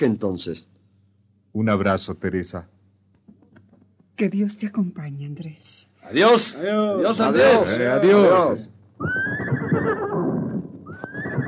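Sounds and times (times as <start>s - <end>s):
speech: 0.0s - 0.8s, 1.5s - 2.8s, 4.2s - 9.4s
horse neighing: 9.0s - 11.4s.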